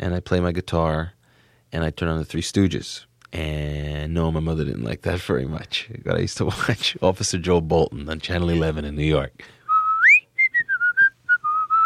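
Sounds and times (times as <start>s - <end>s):
speech: 0.0s - 9.6s
person whistling a bouncy TV show theme tune: 9.7s - 11.8s.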